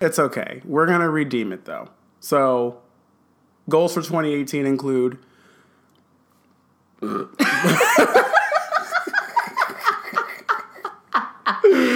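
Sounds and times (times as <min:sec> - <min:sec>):
speech: 0:00.0 - 0:02.8, 0:03.7 - 0:05.3, 0:07.0 - 0:08.2
loud drawn-out burp: 0:07.0 - 0:07.4
rhythmic bursts of laughter: 0:07.4 - 0:11.9.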